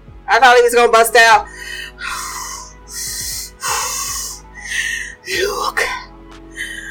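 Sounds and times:
speech: 0.4s - 2.3s, 5.3s - 6.0s
voice imitating heavy rasping breathing with a low growly rattle: 1.5s - 5.7s.

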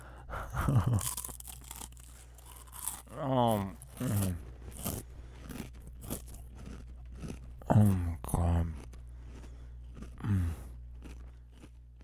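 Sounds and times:
snack bag contents crunched: 0.6s - 12.0s
speech: 0.7s - 1.3s, 3.2s - 4.4s
snack bag being opened: 0.9s - 7.2s.

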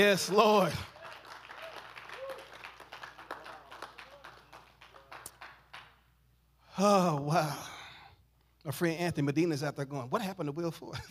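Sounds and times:
speech: 0.0s - 0.9s, 6.8s - 7.7s, 8.6s - 11.0s
crowd clapping enthusiastically: 0.0s - 6.1s.

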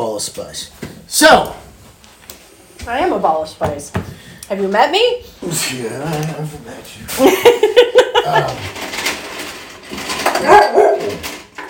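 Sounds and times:
speech: 0.2s - 1.6s, 2.8s - 8.8s
laughter: 7.1s - 8.8s
old dog barking in sharp bursts: 10.4s - 11.2s.

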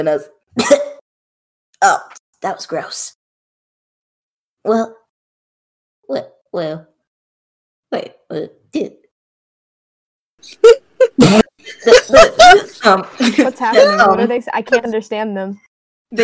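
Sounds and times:
speech: 0.0s - 0.9s, 1.8s - 3.2s, 4.6s - 5.0s, 6.1s - 6.9s, 7.9s - 9.0s, 10.4s - 16.2s
voice imitating harsh sputtering wet coughs: 0.6s - 1.0s, 10.7s - 11.5s
laughter: 10.4s - 14.9s.

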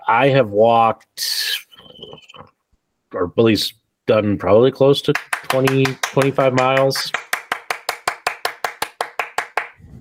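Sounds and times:
speech: 0.1s - 1.6s, 3.1s - 7.2s
person clapping: 5.2s - 9.8s.

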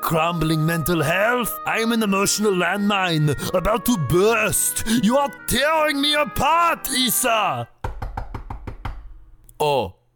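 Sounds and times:
speech: 0.1s - 7.7s, 9.6s - 10.0s
firm knocking on a door: 7.8s - 9.2s.

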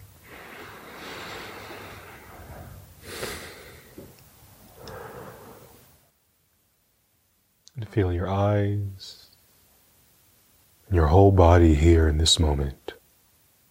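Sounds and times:
slow deep breaths through the nose during a meditation: 0.0s - 6.0s
short snort-like sniff: 0.2s - 4.0s
speech: 8.0s - 9.2s, 10.9s - 12.9s.

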